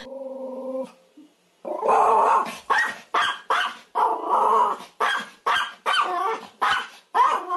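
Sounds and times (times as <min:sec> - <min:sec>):
small dog barking: 0:02.3 - 0:07.5.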